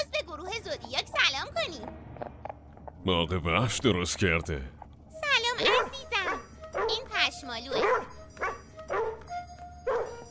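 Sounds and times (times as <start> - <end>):
low hum: 0.0 - 9.9
speech: 3.0 - 4.8
herding sheepdog barking: 5.6 - 7.1, 7.7 - 9.2, 9.9 - 10.2.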